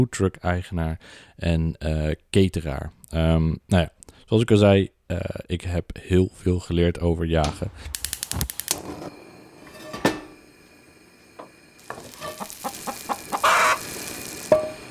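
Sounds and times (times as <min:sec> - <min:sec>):
speech: 0:00.0 - 0:09.1
hissing sizzle-like noise: 0:07.5 - 0:14.8
chickens clucking: 0:12.4 - 0:13.8.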